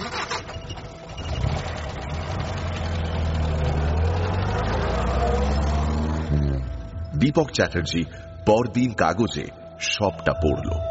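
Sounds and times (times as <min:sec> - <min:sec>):
car engine started by the driver and idling: 0:00.0 - 0:08.4
speech: 0:07.2 - 0:10.8.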